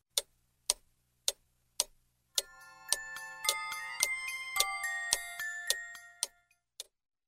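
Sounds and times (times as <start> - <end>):
big clock ticking: 0.0 - 7.0
big clock playing a bright chiming melody: 2.4 - 6.6.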